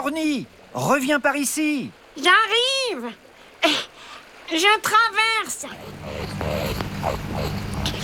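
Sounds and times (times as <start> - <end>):
speech: 0.0 - 7.6
rakali Australian water rat growling: 5.5 - 8.0.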